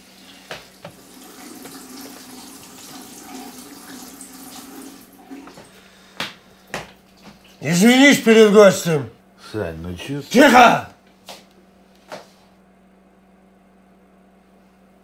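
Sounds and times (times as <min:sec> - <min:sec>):
faucet running into a sink while washing dishes: 0:00.0 - 0:05.7
speech: 0:07.6 - 0:10.9.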